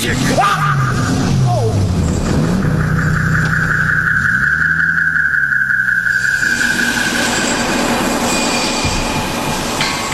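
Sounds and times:
loud heavy vehicle passing by: 0.0s - 10.1s
sustained high metallic squeal: 2.0s - 10.1s.

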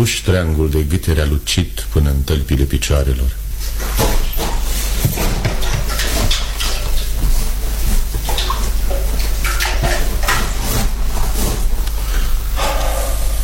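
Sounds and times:
speech: 0.0s - 4.0s
water splashing and sloshing: 3.5s - 13.4s.

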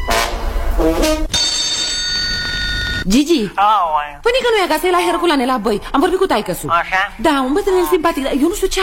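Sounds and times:
speech: 0.8s - 1.4s, 3.1s - 8.8s
telephone ringing with jangling bell bursts: 1.3s - 3.1s.

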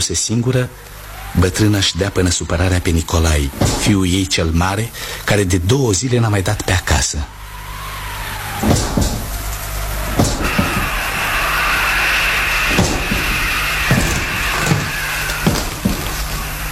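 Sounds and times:
speech: 0.0s - 7.4s
garden gate banging shut: 3.5s - 4.2s, 8.6s - 16.6s.

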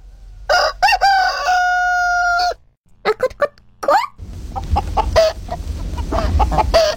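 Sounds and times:
rooster crowing: 0.5s - 2.6s, 3.8s - 6.9s
chicken squawks: 0.5s - 6.9s.

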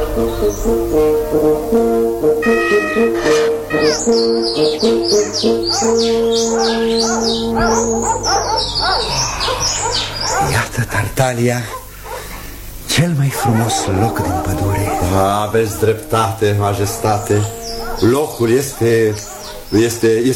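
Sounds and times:
sustained organ-like music: 0.0s - 20.3s
speech: 0.2s - 11.8s, 13.0s - 20.3s
parrot squawking and chirping in flight: 2.5s - 10.8s, 11.7s - 12.8s, 13.4s - 20.0s.

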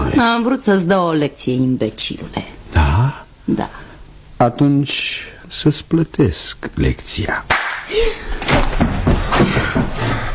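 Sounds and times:
speech: 0.2s - 3.8s, 4.4s - 8.4s, 9.4s - 10.2s
slap across the face: 7.5s - 7.9s.

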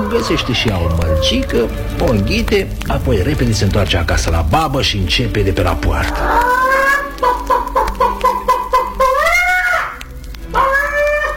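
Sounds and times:
hen cackling: 0.0s - 2.6s, 6.0s - 11.3s
speech: 0.1s - 6.6s.

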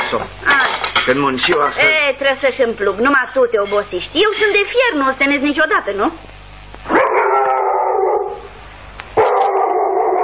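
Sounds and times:
speech: 0.1s - 6.3s
dog howling: 6.9s - 8.5s, 9.2s - 10.2s.

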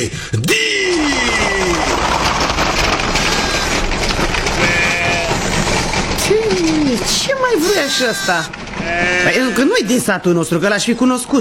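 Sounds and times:
dense steady noisy background: 0.0s - 11.3s
sheep bleating: 3.3s - 3.8s, 4.6s - 5.5s, 7.6s - 10.2s
speech: 7.4s - 11.3s.

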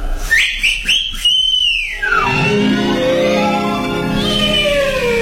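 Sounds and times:
loud human whistle calling a falcon: 0.2s - 2.8s, 4.1s - 5.1s.

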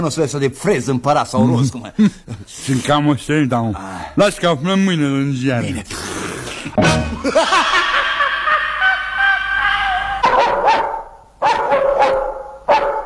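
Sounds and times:
speech: 0.0s - 6.2s
laughter: 6.8s - 10.2s
dog barking and yelping: 10.2s - 13.0s.

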